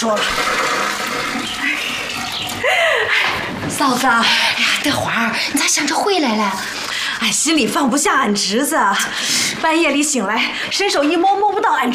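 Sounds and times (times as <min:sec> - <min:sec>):
speech: 0:00.0 - 0:00.5, 0:02.4 - 0:11.9
toilet flushing: 0:00.0 - 0:04.6.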